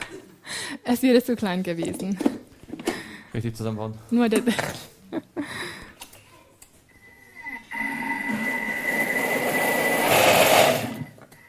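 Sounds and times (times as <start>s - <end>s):
speech: 0.9s - 2.4s, 3.4s - 5.2s
blender pureeing soft cashews: 7.5s - 11.2s.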